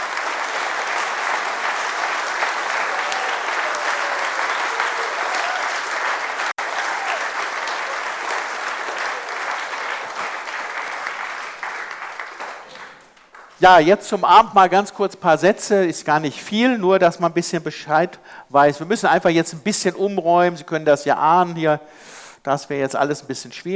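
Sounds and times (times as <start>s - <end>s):
large audience applause: 0.0s - 13.6s
speech: 13.6s - 23.7s.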